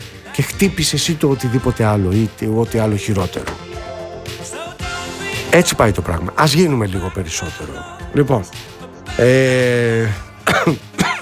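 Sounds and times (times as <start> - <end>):
speech: 0.4 - 3.7, 5.5 - 10.9
long voiced throaty tone: 9.1 - 10.7
person coughing: 10.4 - 11.2.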